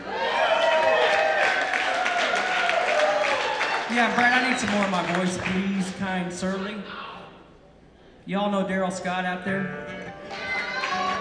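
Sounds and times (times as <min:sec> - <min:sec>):
concert audience shouting and cheering: 0:00.0 - 0:07.3, 0:10.1 - 0:11.1
large audience clapping at a live concert: 0:00.6 - 0:06.1, 0:10.4 - 0:11.1
speech: 0:04.0 - 0:07.0, 0:08.2 - 0:09.9.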